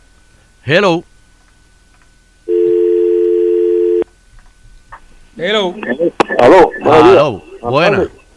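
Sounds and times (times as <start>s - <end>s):
speech: 0.6s - 1.1s, 5.4s - 8.2s
loud telephone ringing tone for a call-in line: 2.5s - 4.0s.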